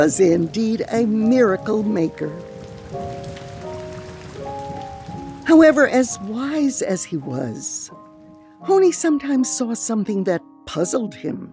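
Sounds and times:
speech: 0.0 - 3.2, 5.5 - 11.5
rain on a hard surface: 0.0 - 8.6.

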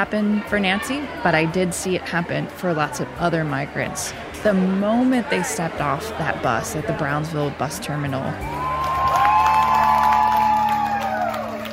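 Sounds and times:
speech: 0.0 - 8.6
crowd applauding and cheering at a bus terminal: 8.4 - 11.7.

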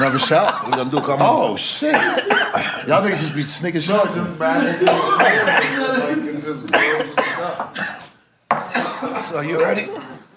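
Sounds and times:
laughter: 0.0 - 3.6, 4.4 - 6.3
speech: 0.0 - 7.8, 9.2 - 10.2
man clearing throat: 1.8 - 2.8, 4.8 - 6.0, 6.7 - 9.3
man coughing hard: 1.8 - 3.4, 4.8 - 6.0, 6.7 - 9.4.

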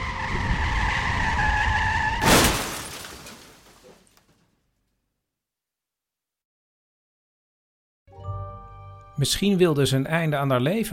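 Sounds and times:
tires screeching: 0.0 - 2.7
car crash impact and shattering debris: 2.2 - 4.4
speech: 9.2 - 10.9.

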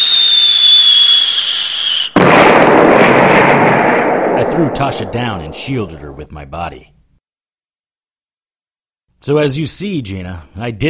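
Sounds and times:
high steady whistle of an incoming missile dropping in pitch: 0.0 - 2.2
copper core fragment missile explosions hitting a tower turret: 2.2 - 6.4
speech: 4.6 - 7.0, 9.2 - 10.8.

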